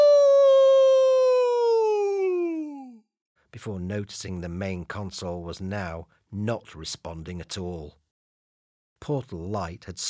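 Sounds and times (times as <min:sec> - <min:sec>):
person's voice imitating a loud wolf howl: 0:00.0 - 0:03.0
speech: 0:03.6 - 0:08.0, 0:09.0 - 0:10.0.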